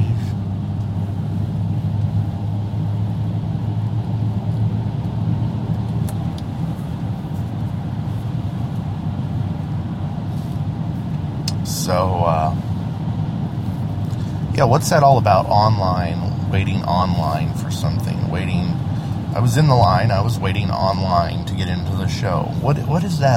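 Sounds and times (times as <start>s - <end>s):
heavy truck engine rumbling: 0.0s - 23.3s
traffic-like hiss: 6.5s - 23.3s
speech: 14.6s - 23.3s.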